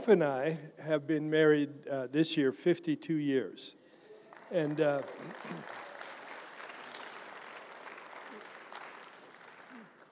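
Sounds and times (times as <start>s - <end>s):
speech: 0.0s - 3.8s, 4.5s - 5.8s
audience applause: 4.3s - 10.1s.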